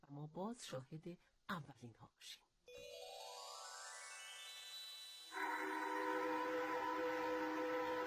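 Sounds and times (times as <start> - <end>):
speech: 0.1 - 2.5
refinery siren work-call whistle: 5.3 - 8.0.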